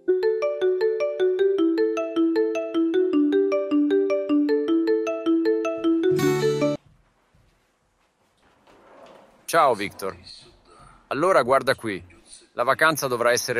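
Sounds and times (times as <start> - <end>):
phone ringing with a melodic electronic ringtone: 0.0 - 6.8
speech: 9.5 - 10.5, 11.1 - 13.5.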